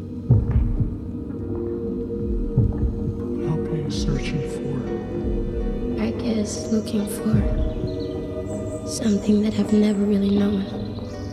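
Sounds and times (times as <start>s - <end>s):
steady deep hum: 0.0s - 11.1s
low heartbeat thumping: 0.2s - 8.1s
speech: 6.5s - 7.7s, 8.9s - 10.8s.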